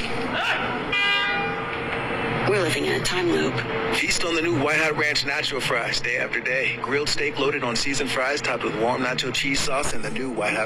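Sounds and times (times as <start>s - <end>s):
person shouting: 0.3s - 0.8s
car horn honk: 0.6s - 2.2s
speech: 2.5s - 10.6s.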